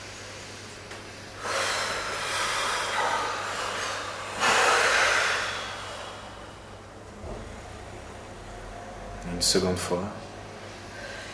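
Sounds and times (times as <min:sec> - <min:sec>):
person exhaling during a guided relaxation exercise: 0:01.3 - 0:07.8
speech: 0:09.4 - 0:10.2.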